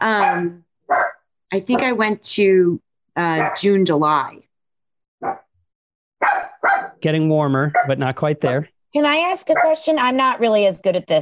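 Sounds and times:
speech: 0.0s - 0.6s, 1.5s - 4.4s, 7.0s - 11.2s
dog barking and yapping: 0.1s - 2.0s, 3.3s - 3.8s, 5.2s - 5.5s, 6.2s - 8.7s, 9.5s - 9.9s.

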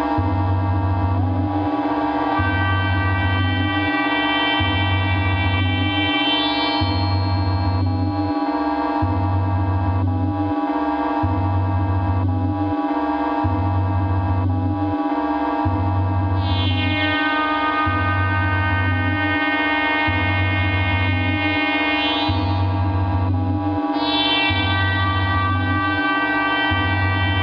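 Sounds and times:
analog synth pulsing low drone: 0.0s - 27.4s
analog synth dense ringing metallic tones: 5.9s - 9.4s.

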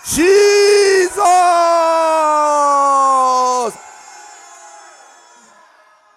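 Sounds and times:
audience shouting together: 0.0s - 4.8s
speech: 0.1s - 0.4s.

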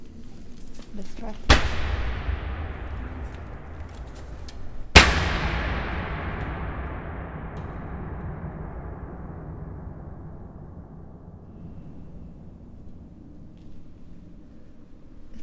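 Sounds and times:
speech: 1.0s - 2.0s
heavy impact from someone jumping onto a surface in a room: 1.5s - 12.8s
deep booming bass rumble: 1.5s - 14.1s.

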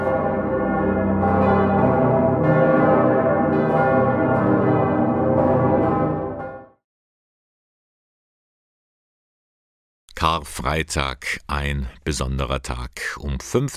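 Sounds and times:
church bells pealing: 0.0s - 6.8s
speech: 10.4s - 13.7s.

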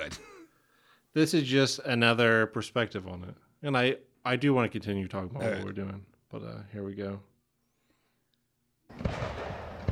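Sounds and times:
speech: 1.2s - 7.3s
fireworks crackling: 8.9s - 9.9s.

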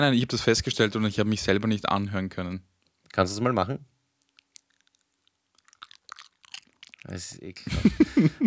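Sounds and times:
speech: 0.0s - 3.9s, 7.1s - 8.4s
wet lips smacking while chewing: 4.2s - 7.1s
laughter: 7.7s - 8.4s.

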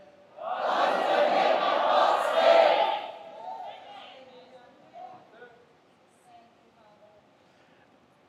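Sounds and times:
murmur of voices: 0.0s - 8.1s
large group shouting together: 0.4s - 4.2s.

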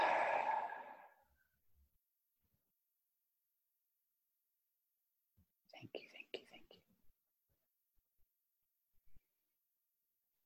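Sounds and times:
deep breath in and out: 0.0s - 1.1s
speech: 5.7s - 6.9s.

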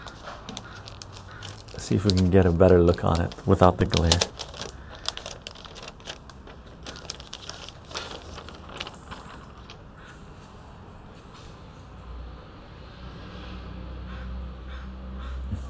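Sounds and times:
Mylar comic sleeve being slid off: 0.0s - 10.1s
speech: 1.9s - 4.4s.

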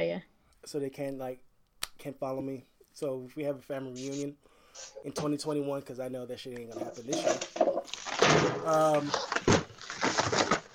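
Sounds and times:
speech: 0.2s - 9.5s
chair being shifted and swapped in a studio: 6.8s - 10.7s.

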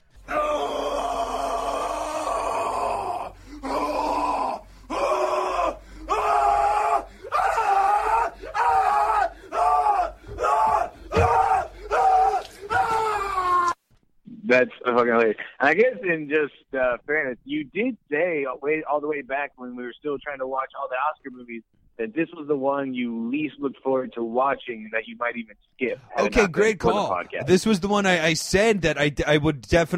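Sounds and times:
man screaming in anguish: 0.2s - 13.8s
speech: 15.2s - 29.9s.

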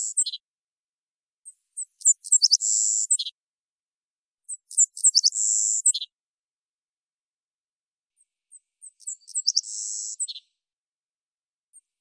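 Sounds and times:
Savannah Sparrow Passerculus sandwichensis singing in Washington: 0.0s - 0.5s, 1.4s - 3.4s, 4.5s - 6.2s, 8.5s - 10.6s.

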